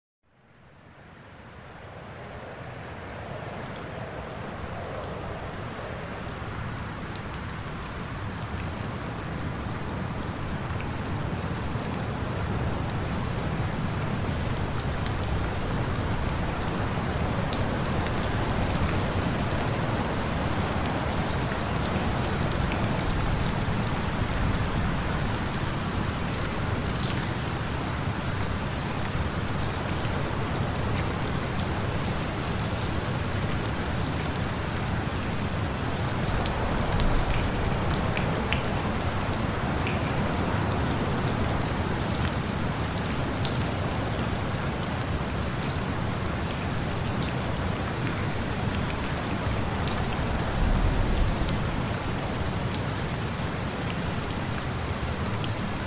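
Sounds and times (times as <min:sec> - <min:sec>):
rain: 0:00.3 - 0:55.8
thunder: 0:50.0 - 0:52.4.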